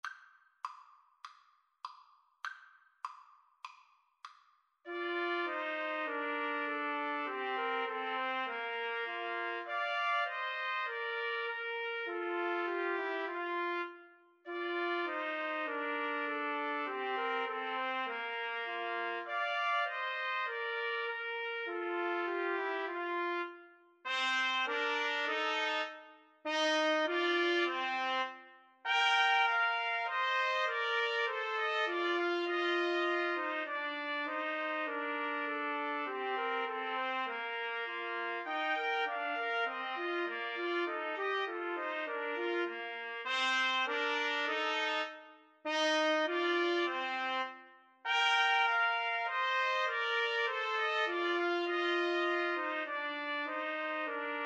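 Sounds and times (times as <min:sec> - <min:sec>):
trumpet trio karaoke melody: 0:04.9 - 0:54.4.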